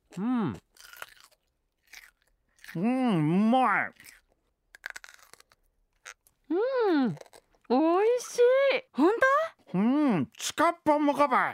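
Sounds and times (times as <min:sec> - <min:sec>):
chewing homemade pickled cucumber: 0:00.0 - 0:02.9, 0:03.8 - 0:06.4
speech: 0:00.2 - 0:00.6, 0:02.8 - 0:04.1, 0:06.5 - 0:11.5.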